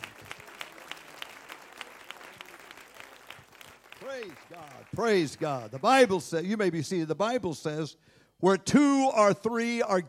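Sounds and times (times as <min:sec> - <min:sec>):
crowd clapping in a steady rhythmic beat: 0:00.0 - 0:06.6
speech: 0:04.1 - 0:10.0.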